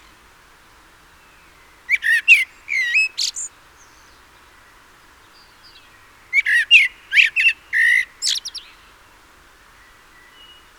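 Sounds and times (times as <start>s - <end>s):
common blackbird Turdus merula calling: 1.9s - 4.1s, 6.3s - 8.9s.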